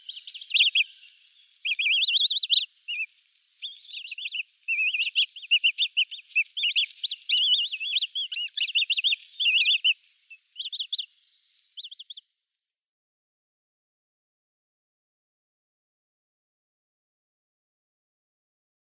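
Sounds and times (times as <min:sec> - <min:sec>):
downy Eurasian coot chicks peeping: 0:00.0 - 0:12.2.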